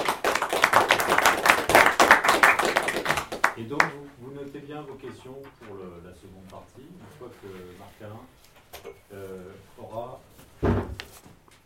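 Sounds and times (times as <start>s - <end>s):
audience applause: 0.0s - 3.9s
speech: 4.8s - 10.8s.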